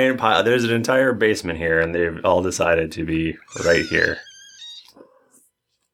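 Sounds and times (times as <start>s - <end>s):
speech: 0.0s - 4.3s
cat squeaking: 3.4s - 5.0s.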